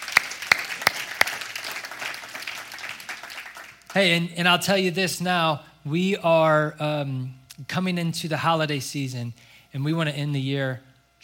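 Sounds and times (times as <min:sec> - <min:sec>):
audience applauding: 0:00.0 - 0:03.9
sharp claps: 0:00.0 - 0:04.0
speech: 0:03.9 - 0:11.2.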